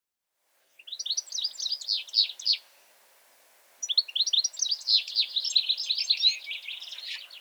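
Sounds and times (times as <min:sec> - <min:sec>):
European goldfinch Carduelis carduelis twittering: 0:00.8 - 0:02.8, 0:03.8 - 0:07.3.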